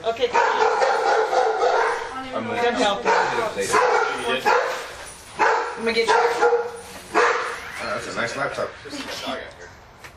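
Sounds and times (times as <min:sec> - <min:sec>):
dogs barking at visitors: 0:00.2 - 0:02.2, 0:02.8 - 0:07.8
speech: 0:02.4 - 0:04.5, 0:05.8 - 0:06.6, 0:08.2 - 0:09.6.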